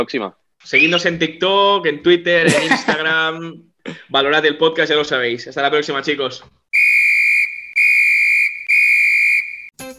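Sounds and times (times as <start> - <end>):
speech: 0.0 - 6.6
person whistling long piercing notes: 6.8 - 9.7.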